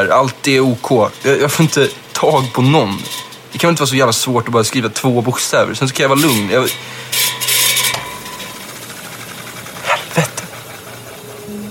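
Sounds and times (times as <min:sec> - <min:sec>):
speech: 0:00.0 - 0:07.5
electric fan mechanism clicking and rasping: 0:00.0 - 0:11.5.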